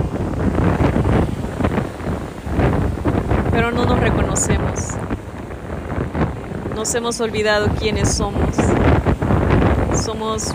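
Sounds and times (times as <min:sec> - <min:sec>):
gusting wind buffeting the microphone: 0:00.0 - 0:10.5
ocean waves washing in: 0:00.0 - 0:10.5
speech: 0:03.7 - 0:05.0, 0:06.8 - 0:08.8, 0:10.0 - 0:10.5.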